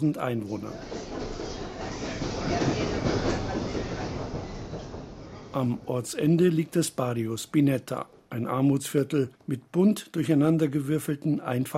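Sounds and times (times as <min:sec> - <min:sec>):
speech: 0:00.0 - 0:01.0, 0:05.5 - 0:11.7
train rumbling on rails from Buenos Aires to Merlo in Argentina: 0:00.4 - 0:06.0.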